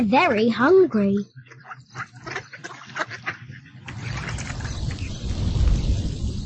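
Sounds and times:
speech: 0.0 - 1.4
ducks quacking: 0.4 - 5.1
deep rumble of thunder: 3.9 - 6.4
steady hiss of rain: 3.9 - 6.4.

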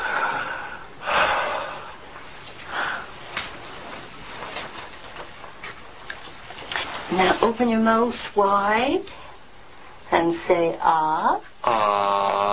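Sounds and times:
deep breathing in and out during a medical check-up: 0.0 - 3.2
speech: 7.2 - 9.2, 10.2 - 12.5.

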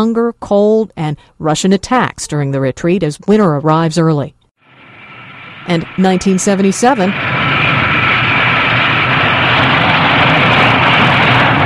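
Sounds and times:
speech: 0.0 - 4.4, 5.6 - 7.4
supersonic Concorde jet engine roar landing in New York City: 4.6 - 11.6.

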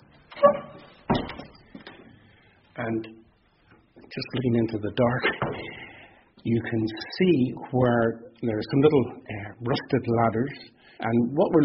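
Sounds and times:
heavy door of an old artillery gun building creaking open: 0.0 - 1.6
heavy door landing with a solid thud: 1.1 - 1.5
speech: 2.8 - 3.2, 4.1 - 5.7, 6.4 - 11.6.

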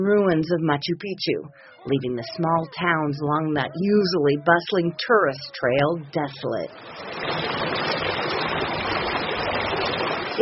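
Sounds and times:
speech: 0.0 - 8.1
water rushing through stone irrigation canals: 6.4 - 10.4.

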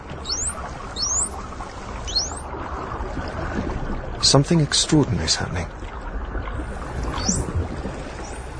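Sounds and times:
dense underwater wash: 0.0 - 8.5
high rising dolphin signature whistles underwater: 0.2 - 1.4, 2.1 - 2.5, 7.1 - 7.5
speech: 4.3 - 5.8.

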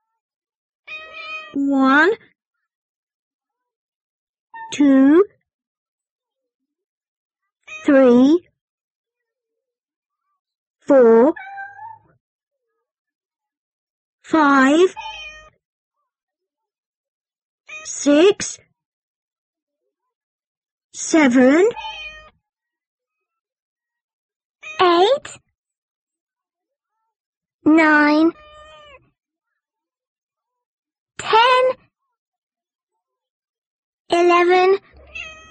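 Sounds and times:
cat meowing: 0.9 - 1.6, 11.4 - 12.0, 15.0 - 15.5, 21.8 - 22.3, 28.3 - 29.0, 35.0 - 35.4
speech: 1.5 - 2.3, 4.7 - 5.3, 7.8 - 8.5, 10.9 - 11.5, 14.3 - 15.2, 17.8 - 18.7, 21.0 - 22.0, 24.8 - 25.4, 27.6 - 28.4, 34.1 - 35.0.

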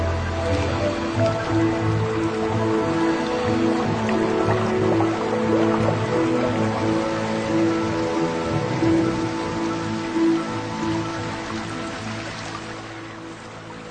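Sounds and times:
water draining off exposed coral reef: 0.1 - 13.8.

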